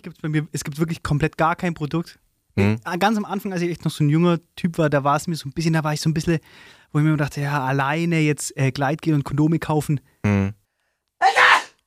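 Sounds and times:
speech: 0.0s - 10.6s, 11.2s - 11.5s
person sneezing: 11.2s - 11.7s.

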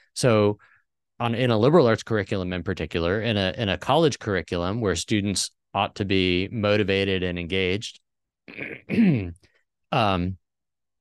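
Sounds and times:
speech: 0.2s - 10.4s
throat clearing in a small room: 8.5s - 9.4s.

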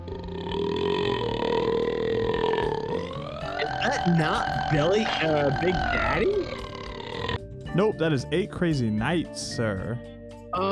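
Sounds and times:
long loud guttural burp: 0.0s - 7.4s
speech: 3.9s - 6.4s, 7.8s - 10.7s.

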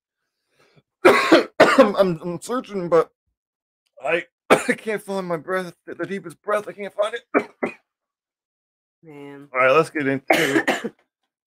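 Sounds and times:
person coughing and clearing throat: 1.0s - 2.0s, 4.5s - 4.8s, 7.2s - 7.8s, 10.3s - 11.0s
speech: 1.8s - 3.2s, 4.0s - 7.8s, 9.0s - 11.4s.

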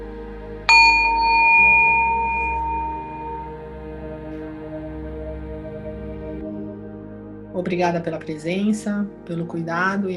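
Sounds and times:
meditation bell struck at the end of a meditation practice: 0.7s - 4.1s
speech: 7.6s - 10.1s.

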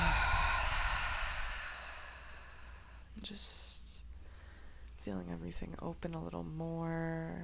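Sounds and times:
mouth exhale during a guided breathing exercise: 0.0s - 3.1s
speech: 3.2s - 3.7s, 5.0s - 7.4s.

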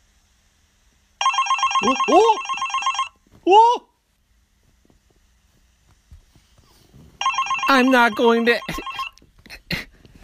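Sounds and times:
phone ringing with a bright electronic ringtone: 1.2s - 3.2s, 7.2s - 9.2s
speech: 1.8s - 2.6s, 3.4s - 3.9s, 7.7s - 8.9s.

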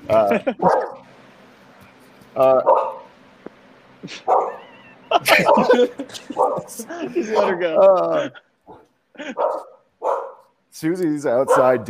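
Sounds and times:
laughter: 0.0s - 0.7s, 4.0s - 9.6s
speech: 0.1s - 1.0s, 2.4s - 2.8s, 4.0s - 4.4s, 5.2s - 10.2s, 10.8s - 11.8s
dog barking excitedly: 0.6s - 1.0s, 2.6s - 3.1s, 4.2s - 4.7s, 5.4s - 7.7s, 9.4s - 10.5s, 11.4s - 11.8s.

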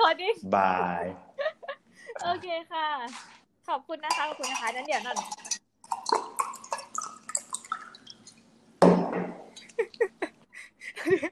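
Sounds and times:
speech: 0.3s - 1.3s, 2.2s - 6.3s, 9.8s - 10.3s, 11.0s - 11.3s
water dripping and splashing: 4.1s - 8.5s
water pouring into a container: 4.5s - 8.4s.

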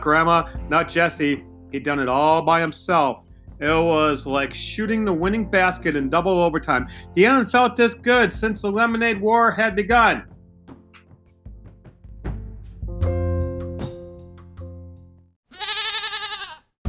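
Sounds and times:
speech: 0.0s - 10.3s
goat bleating: 15.5s - 16.7s.

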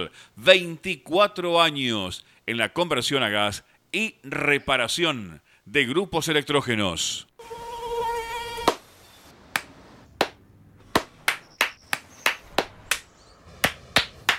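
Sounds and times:
speech: 0.0s - 7.6s
high-pitched mosquito whine: 7.4s - 9.2s
hands clapping at a mosquito: 9.6s - 10.4s, 11.0s - 14.3s.

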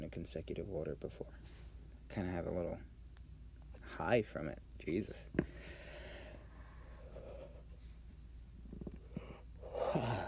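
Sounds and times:
speech: 0.1s - 2.9s, 3.9s - 5.8s
person yawning with an open-mouthed inhale and voiced sigh: 9.6s - 10.2s.

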